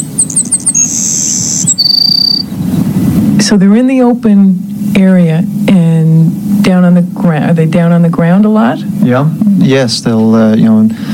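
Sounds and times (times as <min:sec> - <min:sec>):
songbird singing from a low perch: 0:00.0 - 0:02.6
low rumbling background: 0:00.0 - 0:11.1
speech: 0:03.3 - 0:11.0.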